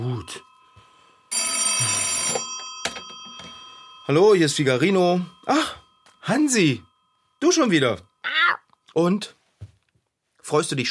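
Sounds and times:
speech: 0:00.0 - 0:00.5, 0:04.1 - 0:08.1, 0:09.0 - 0:09.4, 0:10.5 - 0:10.8
telephone bell ringing: 0:00.0 - 0:08.6.

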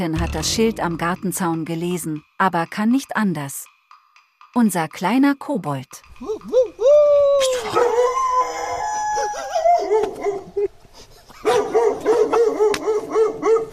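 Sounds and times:
speech: 0:00.0 - 0:03.7, 0:04.5 - 0:06.7
dog howling and yelping in a villa garden: 0:06.9 - 0:10.6, 0:11.5 - 0:13.7
dog barking in a villa garden: 0:07.7 - 0:08.2, 0:09.8 - 0:10.5, 0:11.4 - 0:13.7.

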